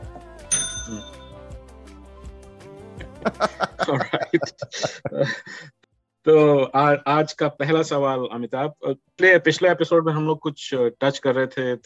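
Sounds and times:
bright bell ringing: 0.4s - 1.6s
quick sharper metallic rings: 0.5s - 1.4s
speech: 0.9s - 1.2s, 3.2s - 5.4s, 6.3s - 11.8s
laughter: 3.0s - 5.7s.

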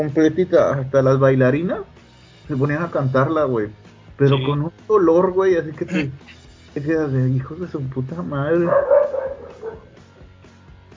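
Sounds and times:
speech: 0.0s - 1.9s, 2.5s - 9.0s
dog howling: 8.5s - 10.0s.

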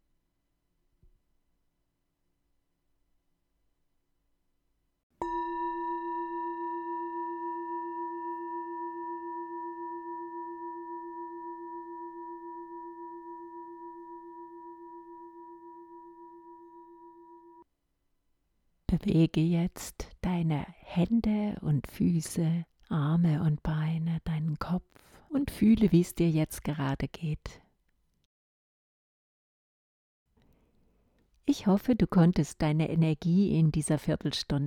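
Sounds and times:
meditation gong struck and ringing: 5.2s - 17.6s
speech: 18.9s - 27.6s, 31.5s - 34.6s.

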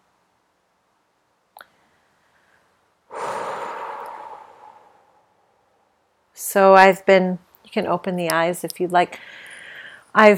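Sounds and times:
deep breath exhaled through slightly parted lips during a meditation exercise: 3.1s - 5.7s
speech: 6.4s - 9.4s, 10.1s - 10.3s.

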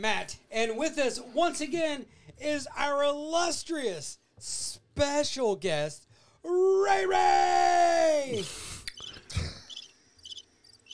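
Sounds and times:
speech: 0.0s - 8.7s
cricket chirping: 9.0s - 10.9s.

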